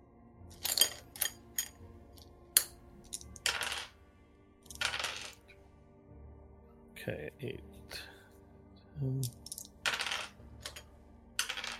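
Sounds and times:
eight-sided dice clattering onto a hard tabletop: 0.5s - 4.0s, 4.6s - 5.6s, 9.2s - 11.7s
speech: 7.1s - 8.0s, 9.0s - 9.4s.

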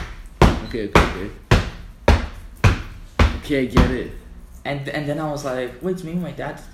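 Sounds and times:
knocking imitating footsteps outside a door: 0.0s - 4.2s
speech: 0.7s - 1.5s, 3.5s - 6.7s.

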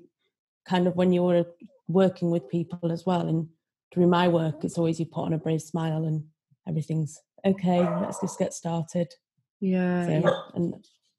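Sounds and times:
speech: 0.7s - 11.0s
dog giving a drawn-out tonal bark and a yelp: 7.8s - 8.4s, 10.2s - 10.6s.

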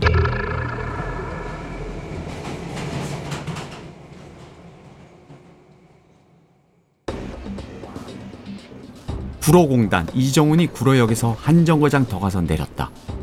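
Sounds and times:
subway train departing: 0.6s - 10.9s
speech: 9.5s - 13.2s.

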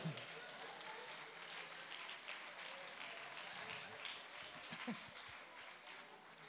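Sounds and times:
faint voices: 0.0s - 1.2s
audience applause: 0.0s - 6.4s.

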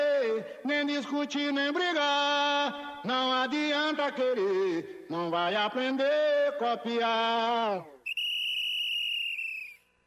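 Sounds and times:
speech: 0.6s - 8.0s
sustained shrill whistle blast: 8.0s - 10.0s.

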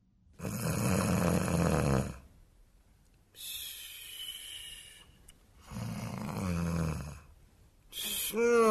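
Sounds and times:
performer voicing exaggerated snoring for a finger puppet: 0.4s - 2.3s, 5.6s - 7.3s.

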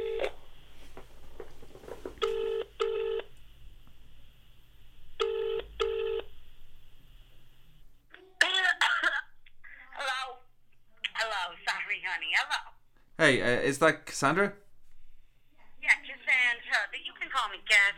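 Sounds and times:
faint steady hum: 0.0s - 17.9s
phone line ringback tones: 2.2s - 3.3s, 5.2s - 6.3s
speech: 12.4s - 14.6s.

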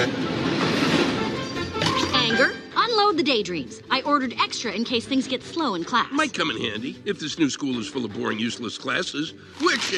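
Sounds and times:
train rumbling as though pulling in: 0.0s - 2.4s
speech: 3.0s - 9.9s.

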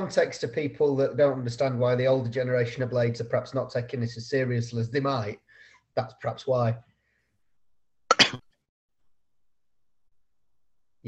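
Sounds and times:
speech: 0.0s - 5.4s, 6.0s - 6.9s
person coughing: 8.1s - 8.4s.

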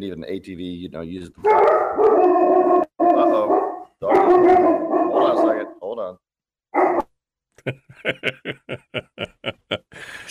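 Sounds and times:
speech: 0.0s - 2.4s, 7.6s - 8.6s
dog barking: 1.4s - 5.8s, 6.8s - 7.0s
laughter: 7.6s - 10.2s.

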